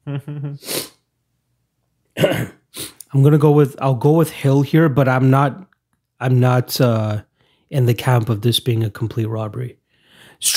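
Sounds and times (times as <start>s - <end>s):
speech: 0.1s - 1.0s, 3.1s - 9.8s, 10.4s - 10.5s
person sneezing: 0.5s - 1.0s, 2.2s - 3.0s.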